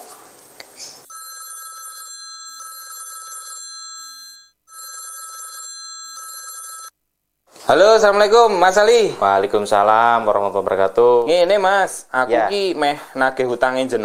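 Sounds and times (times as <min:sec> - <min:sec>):
phone ringback tone from an outgoing call: 0:01.1 - 0:06.9
speech: 0:07.7 - 0:14.0.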